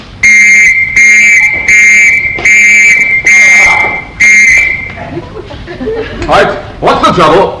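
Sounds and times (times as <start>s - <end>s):
shrill whistle blasts as a gas attack alarm: 0.2s - 5.0s
laughter: 4.9s - 6.7s
speech: 7.2s - 7.5s.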